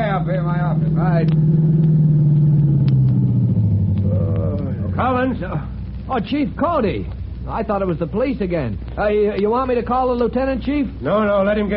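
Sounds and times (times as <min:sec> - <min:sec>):
approaching car engine rumbling: 0:00.0 - 0:11.7
speech: 0:00.5 - 0:02.0, 0:05.2 - 0:11.7.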